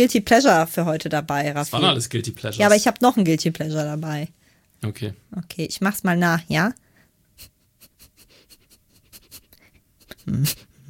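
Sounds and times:
speech: 0.0 - 6.8, 10.3 - 10.7
person imitating a dog sniffing: 8.4 - 10.8.

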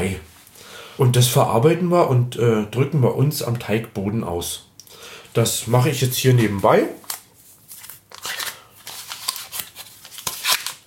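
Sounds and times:
speech: 0.0 - 0.3, 1.0 - 4.7, 5.3 - 7.0
paper wrapper crinkling as a block of butter is unwrapped while baking: 7.0 - 10.8.

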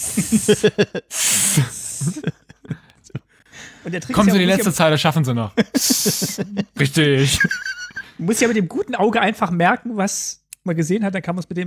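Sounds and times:
voice hissing a long snake-like S: 0.0 - 2.3, 5.8 - 6.4
laughter: 0.0 - 8.6
speech: 0.3 - 2.4, 3.9 - 11.6.

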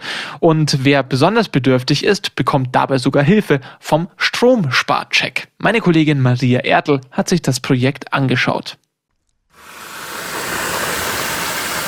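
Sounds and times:
speech: 0.4 - 8.8
running water: 9.6 - 11.8.

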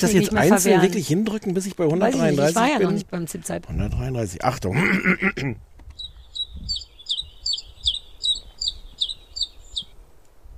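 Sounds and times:
speech: 0.0 - 5.7
low background noise: 0.0 - 10.5
Common Chiffchaff singing: 6.0 - 9.9.

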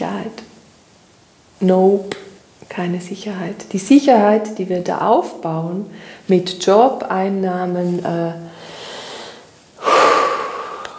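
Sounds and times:
speech: 0.2 - 0.4, 1.6 - 8.5
person taking a deep breath: 8.5 - 10.9.

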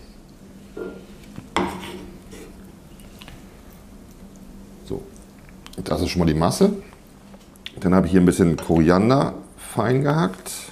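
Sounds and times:
utensil scraping a small bowl while scooping dim sum filling: 1.6 - 2.6
speech: 5.8 - 6.8, 7.8 - 10.7.

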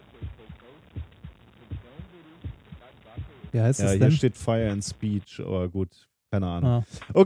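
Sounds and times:
heartbeat thumping in soft double thuds: 0.2 - 5.0
speech: 3.5 - 7.2.

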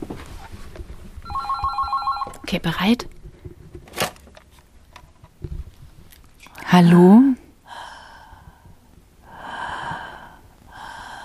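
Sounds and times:
telephone ringing with electronic trilling tone: 1.2 - 2.5
speech: 2.5 - 3.2, 6.7 - 7.4.

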